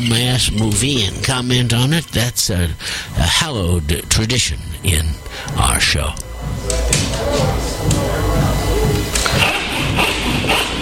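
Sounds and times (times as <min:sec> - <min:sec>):
speech: 0:00.0 - 0:08.3
thumping bass music from a disco festival next door: 0:00.0 - 0:10.8.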